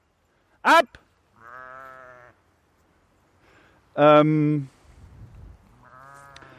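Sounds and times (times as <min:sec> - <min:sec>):
speech: 0:00.6 - 0:01.0, 0:04.0 - 0:04.7
ewe bleating while defending her lamb from a dog: 0:01.3 - 0:02.4, 0:05.7 - 0:06.5.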